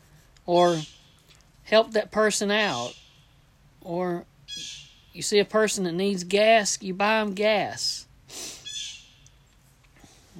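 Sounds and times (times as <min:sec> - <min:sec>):
low quiet hum: 0:00.0 - 0:10.3
speech: 0:00.5 - 0:00.9, 0:01.7 - 0:03.0, 0:03.8 - 0:08.6
faint high bird chirps: 0:00.5 - 0:01.3, 0:02.6 - 0:03.4, 0:04.5 - 0:05.3, 0:08.6 - 0:09.6.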